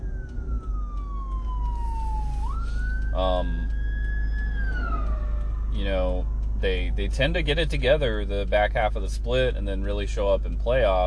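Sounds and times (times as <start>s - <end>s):
emergency vehicle siren wailing as it passes: 0.0s - 8.1s
speech: 3.2s - 3.7s, 5.8s - 11.0s.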